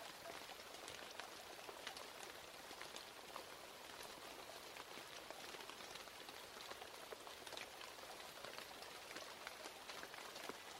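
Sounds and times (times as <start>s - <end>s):
steady rain: 0.0s - 10.7s.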